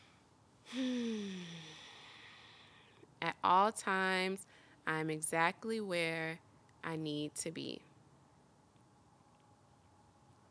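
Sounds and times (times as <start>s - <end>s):
speech: 0.7s - 1.0s, 3.4s - 7.9s
deep breath in during a guided breathing exercise: 0.7s - 3.0s.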